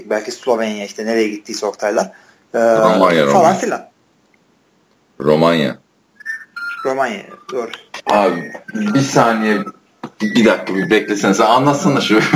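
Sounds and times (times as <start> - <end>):
speech: 0.1 - 3.9, 5.2 - 5.8, 6.8 - 12.3
faint electronic phone ringtone chirping: 6.2 - 12.1
people laughing: 12.0 - 12.3.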